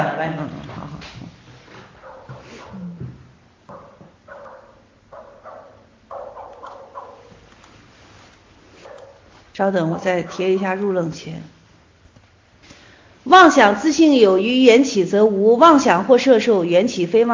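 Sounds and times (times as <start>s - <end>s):
speech: 0.2s - 0.7s, 9.6s - 11.6s, 13.3s - 17.3s
dog barking: 2.0s - 2.8s, 3.7s - 7.4s, 8.8s - 9.3s.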